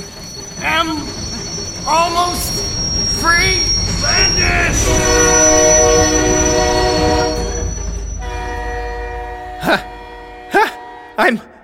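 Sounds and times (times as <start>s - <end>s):
train rumbling past: 0.0s - 11.6s
speech: 0.8s - 1.2s, 1.8s - 2.6s, 3.2s - 5.4s, 11.2s - 11.5s
train horn blaring: 3.4s - 11.6s.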